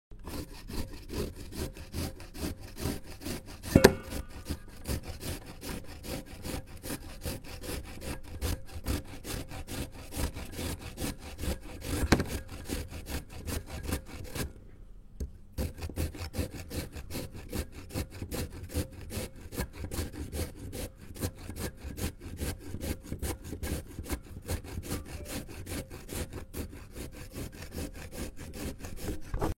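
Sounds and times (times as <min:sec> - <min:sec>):
grating sound: 0:00.1 - 0:14.6, 0:15.6 - 0:29.5.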